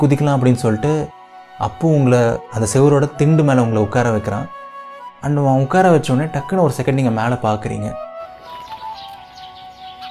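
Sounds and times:
speech: 0.0 - 4.6, 5.2 - 8.0
birds chirping while flying past: 6.0 - 10.0.

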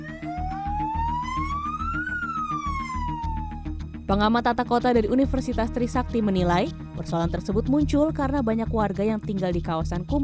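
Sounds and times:
fire truck siren wailing: 0.0 - 3.8
pulsing beat: 0.0 - 4.0
speech: 4.1 - 10.2.

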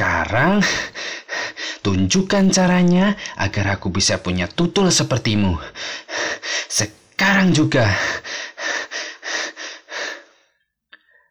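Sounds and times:
speech: 0.3 - 1.2, 1.8 - 8.5
person panting heavily after running: 0.6 - 1.8, 5.8 - 7.4, 8.0 - 10.4.

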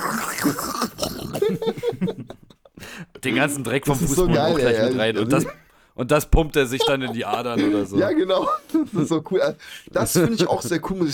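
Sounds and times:
voice imitating a video game character scooping soup off the floor: 0.0 - 1.6
laughter: 1.4 - 5.6, 6.4 - 11.0
speech: 3.2 - 11.1.

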